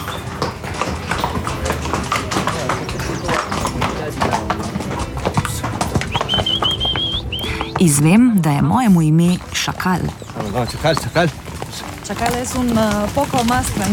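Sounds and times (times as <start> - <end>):
horses walking with hooves clip-clopping: 0.0 - 13.9
faint high whistling tone: 6.1 - 7.5
speech: 7.8 - 11.4, 12.1 - 13.9.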